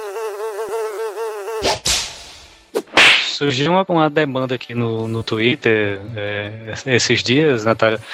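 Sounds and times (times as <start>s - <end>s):
small fly buzzing: 0.0s - 2.7s
speech: 1.6s - 1.9s, 3.4s - 8.1s.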